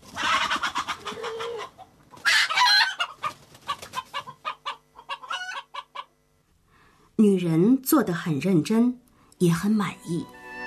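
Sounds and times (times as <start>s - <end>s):
rooster squawking and crowing: 0.1s - 6.1s
speech: 7.2s - 10.4s.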